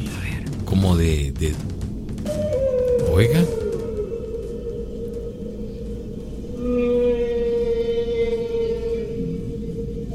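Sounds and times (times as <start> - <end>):
speech: 0.8 - 2.5, 3.2 - 3.6
humpback whale song with eerie moaning tone: 2.2 - 10.1.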